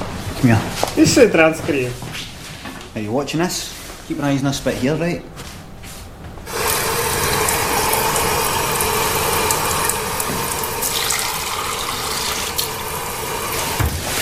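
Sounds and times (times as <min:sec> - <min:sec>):
speech: 0:00.4 - 0:02.1, 0:03.1 - 0:05.3
water running from a tap: 0:06.5 - 0:14.1.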